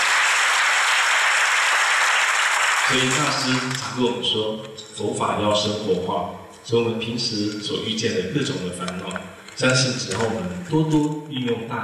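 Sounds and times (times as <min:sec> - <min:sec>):
crowd applause at a Buddhist temple gathering: 0:00.0 - 0:04.0
speech: 0:02.9 - 0:11.8.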